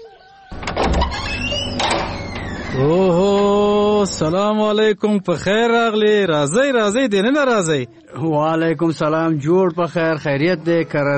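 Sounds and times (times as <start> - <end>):
door being opened: 0.5 - 4.3
speech: 2.7 - 11.1.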